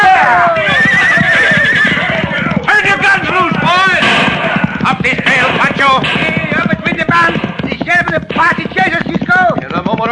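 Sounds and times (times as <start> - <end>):
horses whinnying: 0.0 - 4.9
hooves clip-clopping as riders gallop: 0.0 - 10.0.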